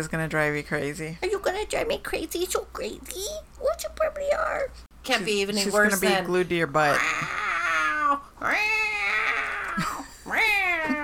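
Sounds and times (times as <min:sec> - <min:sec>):
speech: 0:00.0 - 0:07.4, 0:08.1 - 0:08.8
person imitating cat meows: 0:06.9 - 0:11.0.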